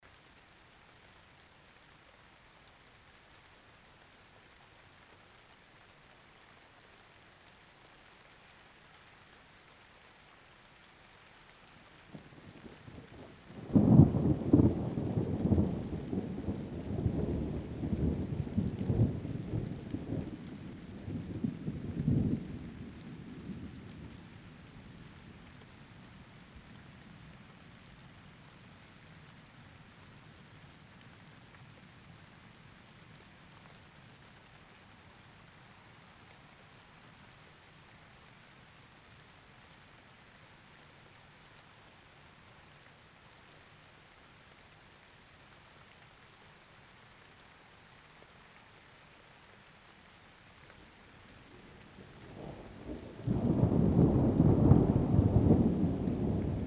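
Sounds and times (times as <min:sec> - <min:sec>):
rain: 0:00.0 - 0:56.6
thunder: 0:12.1 - 0:24.2, 0:51.6 - 0:56.6.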